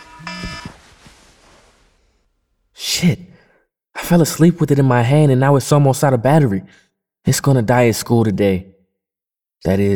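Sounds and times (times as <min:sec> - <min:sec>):
phone alarm buzzy electronic tone: 0:00.0 - 0:01.1
quiet room noise: 0:00.0 - 0:02.7
speech: 0:03.0 - 0:03.3, 0:04.1 - 0:08.7, 0:09.6 - 0:09.9.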